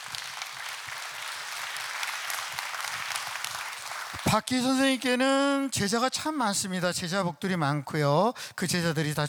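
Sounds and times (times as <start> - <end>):
audience applause: 0.0 - 4.4
speech: 4.3 - 9.2.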